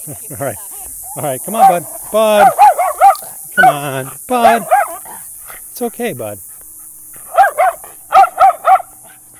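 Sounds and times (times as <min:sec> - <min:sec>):
speech: 0:00.0 - 0:02.6, 0:03.6 - 0:04.8, 0:05.8 - 0:06.5
faint steady hiss: 0:00.0 - 0:09.3
dog barking excitedly during a greeting: 0:00.9 - 0:05.6, 0:07.1 - 0:09.3.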